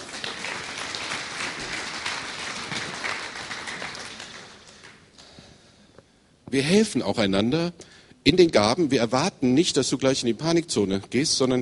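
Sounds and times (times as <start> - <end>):
audience applauding: 0.0 - 5.2
speech: 6.5 - 11.6.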